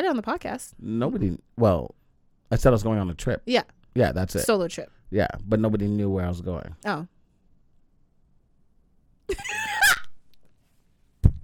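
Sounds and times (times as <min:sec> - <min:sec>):
speech: 0:00.0 - 0:07.2, 0:09.3 - 0:09.7
person letting out a harsh scream-like cackle into a microphone: 0:09.3 - 0:10.2.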